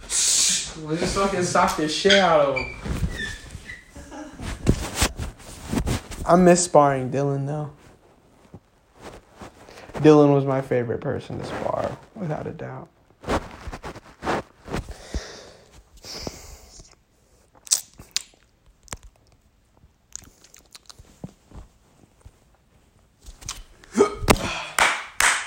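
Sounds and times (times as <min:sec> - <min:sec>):
speech: 0:00.7 - 0:02.9, 0:06.3 - 0:07.8, 0:10.0 - 0:13.0
small rustling noises: 0:01.0 - 0:06.5, 0:07.6 - 0:10.3, 0:11.2 - 0:15.1, 0:18.6 - 0:23.8
quiet breathing: 0:14.9 - 0:17.5
person hiccuping: 0:23.9 - 0:24.5.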